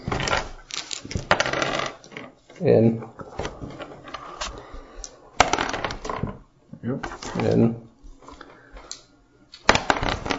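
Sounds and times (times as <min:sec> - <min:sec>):
dice tossed and clattering across a hard tabletop: 0:00.1 - 0:02.3, 0:05.4 - 0:06.3, 0:09.7 - 0:10.3
speech: 0:02.6 - 0:03.7.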